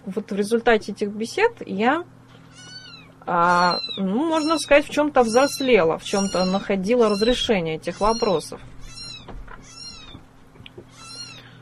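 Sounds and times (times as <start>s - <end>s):
speech: 0.1s - 2.2s, 3.2s - 8.7s
small half-white half-black kitten giving thin high-pitched meows: 2.5s - 10.2s, 10.9s - 11.5s.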